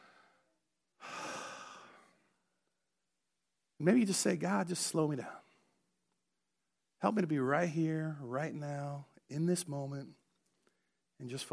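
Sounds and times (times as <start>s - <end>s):
deep breath drawn in and let out: 0.0s - 2.4s
speech: 3.8s - 5.4s, 7.0s - 10.2s, 11.2s - 11.5s.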